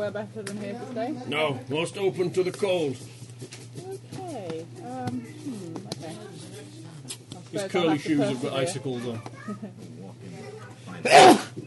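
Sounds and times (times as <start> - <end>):
speech: 0.0 - 3.5, 7.5 - 9.9, 11.0 - 11.4
person sneezing: 11.0 - 11.6.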